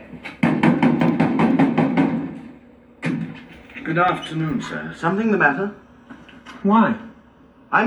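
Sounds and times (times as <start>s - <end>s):
heavy knocking on a closed door: 0.4s - 2.4s
speech: 3.9s - 5.8s, 6.6s - 7.1s.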